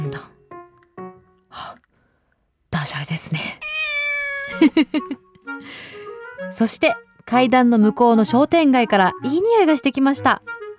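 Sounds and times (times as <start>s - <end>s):
speech: 0.1s - 0.4s, 2.8s - 3.8s, 4.5s - 10.5s
cat meowing by a stairway near a shopping street: 3.6s - 4.7s.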